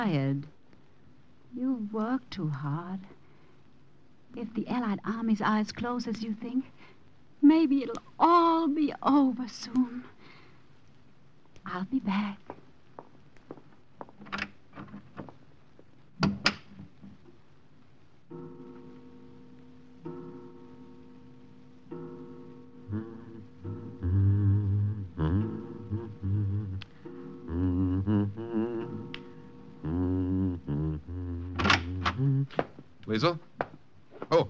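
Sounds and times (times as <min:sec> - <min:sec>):
speech: 0:00.0 - 0:00.6, 0:01.5 - 0:03.2, 0:04.3 - 0:10.1, 0:11.6 - 0:12.6, 0:32.5 - 0:33.5
soft sustained music: 0:18.3 - 0:32.5
unlatched door clicking and thunking open: 0:31.6 - 0:32.2.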